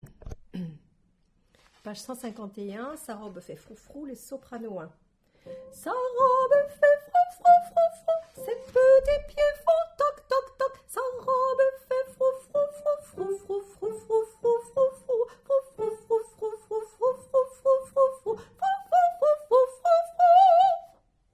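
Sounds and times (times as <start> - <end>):
soprano singing: 5.5 - 21.0.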